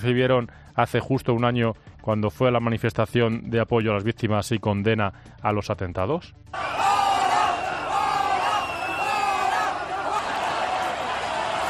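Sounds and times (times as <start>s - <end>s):
speech: 0.0s - 6.8s
large crowd booing and shouting: 6.6s - 11.6s.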